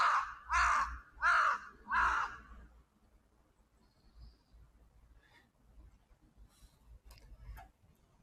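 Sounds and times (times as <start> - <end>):
crows cawing near their nest: 0.0 - 2.6.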